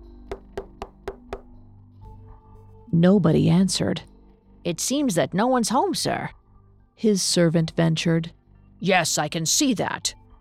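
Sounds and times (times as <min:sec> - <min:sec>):
firm knocks on the door of a stately home: 0:00.3 - 0:01.5
speech: 0:02.9 - 0:06.4, 0:07.0 - 0:10.2.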